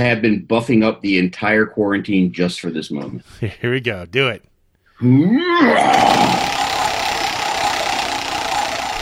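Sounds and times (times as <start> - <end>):
speech: 0.0 - 6.6
rising vocal cry: 5.0 - 9.0
prize wheel spun hard, whirring rattle: 5.8 - 9.0.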